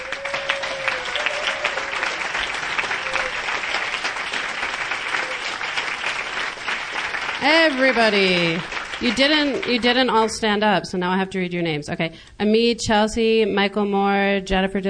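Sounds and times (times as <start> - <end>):
faint whistles and cheers: 0.0 - 3.8, 5.0 - 5.8
sizable audience applause: 0.0 - 10.4
speech: 7.4 - 14.8.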